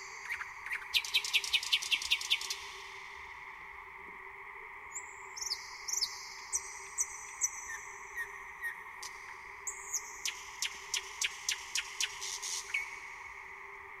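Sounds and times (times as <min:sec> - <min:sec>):
thrush nightingale singing whistled notes and clicks: 0:00.0 - 0:02.6, 0:04.9 - 0:13.1.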